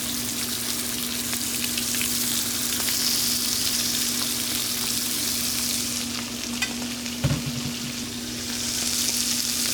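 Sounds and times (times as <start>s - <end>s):
livers frying in a pan in a restaurant kitchen: 0.0s - 9.7s.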